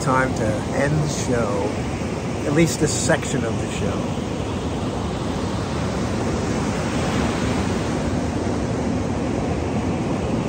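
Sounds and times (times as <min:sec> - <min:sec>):
speech: 0:00.0 - 0:04.3
ocean waves washing ashore in a roar of surf: 0:00.0 - 0:10.4.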